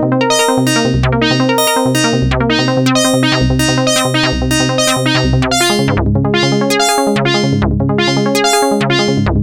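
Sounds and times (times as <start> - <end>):
sequential synthesizer arpeggio: 0.2 - 9.4.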